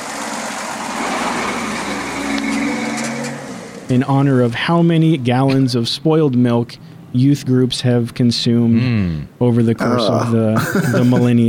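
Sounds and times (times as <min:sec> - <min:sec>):
heavy milk truck driving by with road noise: 0:00.0 - 0:04.2
speech: 0:03.9 - 0:11.4
laughter: 0:09.8 - 0:11.4.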